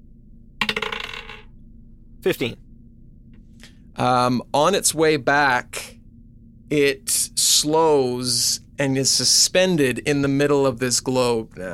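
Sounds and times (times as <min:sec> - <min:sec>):
small hard d20 die rolling across a tabletop: 0:00.6 - 0:01.5
speech: 0:02.2 - 0:02.7, 0:04.0 - 0:05.9, 0:06.7 - 0:11.7.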